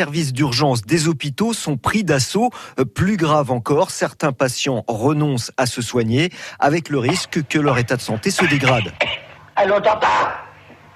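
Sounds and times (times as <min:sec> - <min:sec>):
speech: 0:00.0 - 0:10.4
faint hum: 0:00.0 - 0:10.9
harsh raspy coughs: 0:08.8 - 0:09.4.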